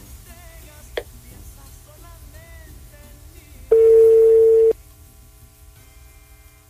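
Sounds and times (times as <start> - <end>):
telephone busy tone after an unanswered call: 3.7 - 4.8.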